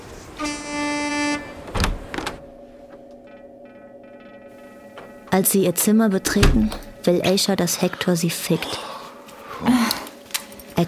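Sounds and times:
car horn honking to scare dogs and chickens off the street: 0.4s - 1.7s
speech: 5.4s - 8.9s.

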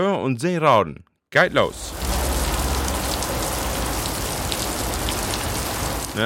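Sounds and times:
speech: 0.0s - 2.0s
heavy rain pouring: 1.4s - 6.2s.

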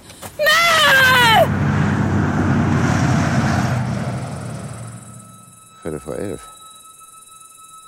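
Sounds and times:
bus engine rumbling as it pulls away and drives off: 1.1s - 5.7s
speech: 6.1s - 6.5s.

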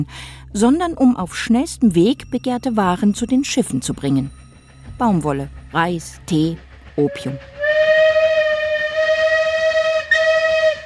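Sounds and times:
speech: 0.0s - 4.4s, 5.0s - 7.6s
whistle of a small steam locomotive on the toy train to Darjeeling, India: 7.0s - 10.8s.

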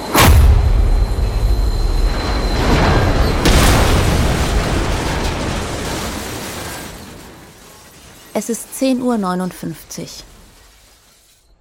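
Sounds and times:
train crash loud bang with heavy jolt: 0.0s - 7.6s
speech: 8.4s - 10.3s.

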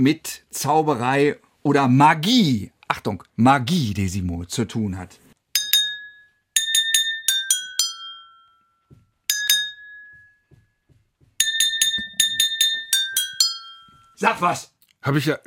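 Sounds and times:
speech: 0.0s - 5.2s, 14.2s - 15.4s
drinking glasses tapped with beaters playing a song melody: 5.6s - 10.7s, 11.4s - 14.2s.

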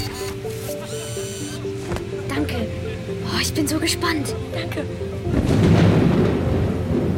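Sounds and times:
speech: 3.4s - 5.8s
rain from a crisis-relief machine pouring onto an umbrella: 5.3s - 7.1s.

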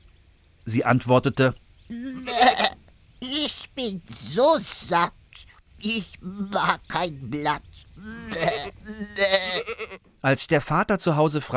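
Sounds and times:
speech: 0.7s - 2.7s, 3.8s - 5.2s, 5.8s - 11.5s
goat bleating: 1.9s - 5.0s, 5.8s - 10.1s.

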